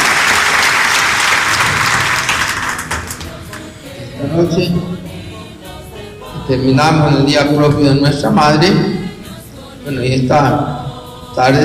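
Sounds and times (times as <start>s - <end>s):
crowd applauding: 0.0s - 3.7s
speech: 4.3s - 5.1s, 6.5s - 9.0s, 9.8s - 10.7s, 11.4s - 11.6s.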